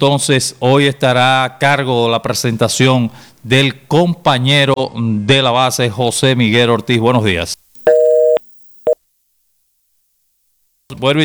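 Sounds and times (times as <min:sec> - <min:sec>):
speech: 0:00.0 - 0:07.6, 0:10.9 - 0:11.2
telephone busy tone after a dropped call: 0:07.8 - 0:09.0.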